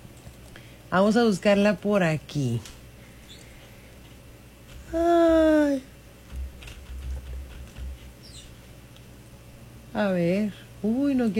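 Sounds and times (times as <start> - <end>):
low hum: 0.0 - 11.3
speech: 0.9 - 2.8, 4.9 - 5.9, 10.0 - 11.3
keys tapped on a computer keyboard: 6.3 - 8.0.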